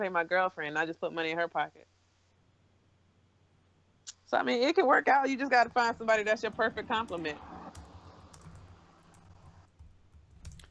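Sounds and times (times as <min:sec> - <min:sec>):
speech: 0:00.0 - 0:01.9, 0:04.3 - 0:07.5
hard clacking of keys on a computer keyboard: 0:05.7 - 0:10.6.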